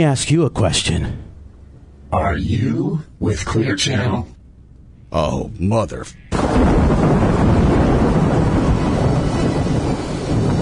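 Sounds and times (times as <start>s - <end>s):
speech: 0.0s - 1.3s, 2.1s - 4.4s, 5.1s - 7.3s
thunder rumbling: 6.3s - 10.5s.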